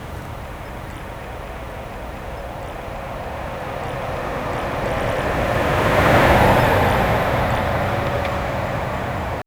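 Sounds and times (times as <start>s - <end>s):
pickup truck driving off-road: 0.0s - 9.4s.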